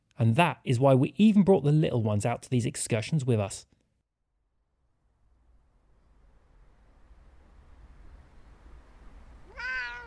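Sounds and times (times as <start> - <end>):
speech: 0.2 - 3.8
steady low hiss: 4.8 - 10.0
house cat meowing: 9.4 - 10.0.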